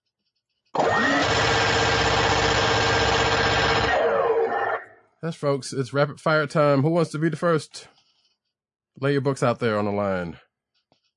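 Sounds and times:
minigun spinning up sound effect: 0.8s - 4.0s
speech: 5.2s - 8.0s, 9.0s - 10.4s.

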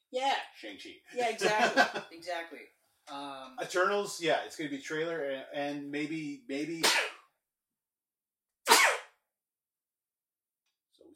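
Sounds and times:
speech: 0.1s - 7.1s
laughter: 1.2s - 2.1s
person sneezing: 6.8s - 7.2s, 8.7s - 9.2s.

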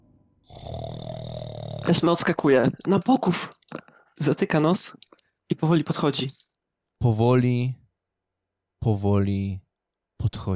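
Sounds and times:
loud rasping throaty snore: 0.5s - 2.0s
speech: 1.9s - 6.4s, 7.0s - 7.8s, 8.8s - 9.6s, 10.2s - 10.5s.

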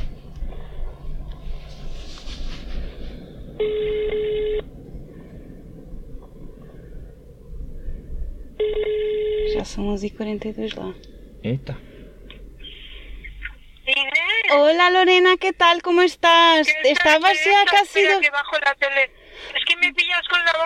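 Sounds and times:
noisy rumbling background: 0.0s - 20.6s
phone ringback tone over a speakerphone: 3.6s - 4.7s, 8.6s - 9.6s
speech: 9.8s - 11.9s, 14.5s - 19.6s.

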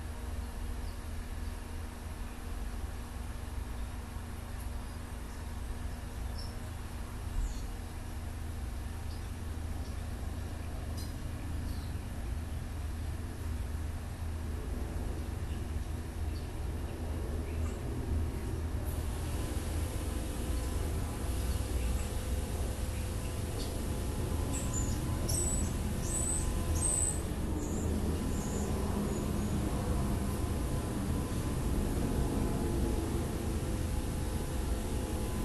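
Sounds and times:
steady low engine drone: 0.0s - 35.4s
brief high bird chirps: 22.8s - 29.6s.

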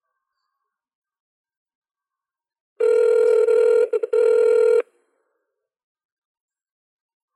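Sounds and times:
electronic ringback tone of an outgoing phone call: 2.8s - 4.9s.

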